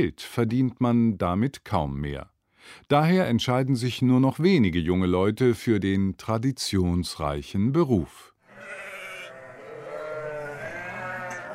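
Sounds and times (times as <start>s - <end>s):
speech: 0.0s - 8.3s
several sheep bleating in chorus: 8.5s - 11.5s.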